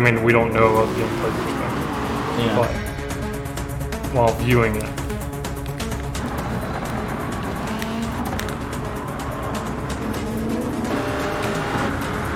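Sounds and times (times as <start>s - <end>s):
speech: 0.0s - 1.6s, 2.4s - 2.9s, 4.1s - 5.0s
racing car engines roaring in a video game: 0.0s - 12.3s
tire squeal of racing cars in a video game: 0.6s - 3.5s, 6.2s - 12.3s.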